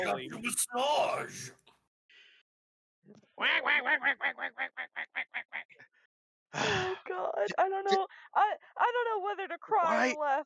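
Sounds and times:
speech: 0.0s - 1.7s, 3.0s - 10.4s
duck quacking: 3.4s - 5.7s.

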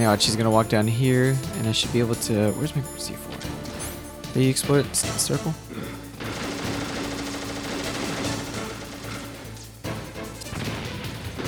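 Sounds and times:
speech: 0.0s - 3.4s, 4.4s - 6.0s
rapid automatic gunfire from a shooter video game: 6.2s - 11.4s.

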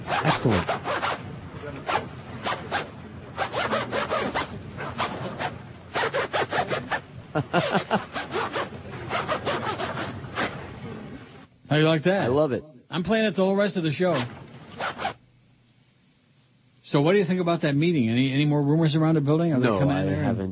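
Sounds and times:
zipper being pulled back and forth: 0.0s - 1.2s, 1.8s - 7.0s, 7.6s - 10.6s, 14.1s - 15.2s
speech: 0.4s - 0.8s, 11.8s - 14.4s, 16.9s - 20.4s
laughter: 7.2s - 9.1s.

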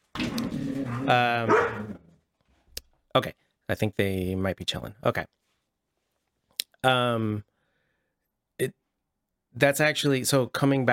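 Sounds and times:
dog barking with a howling quality: 0.9s - 2.0s
speech: 1.0s - 1.6s, 3.2s - 5.4s, 6.8s - 7.5s, 8.6s - 8.8s, 9.6s - 10.9s.

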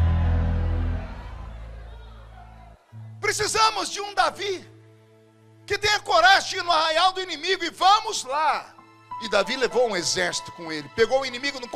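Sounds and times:
church audience shouting together: 0.0s - 2.9s
speech: 3.3s - 4.7s, 5.7s - 11.7s.

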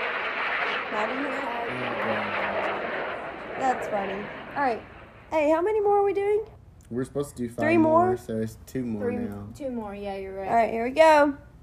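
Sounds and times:
jet flying overhead roaring: 0.0s - 6.4s
speech: 0.9s - 2.7s, 3.6s - 11.5s.

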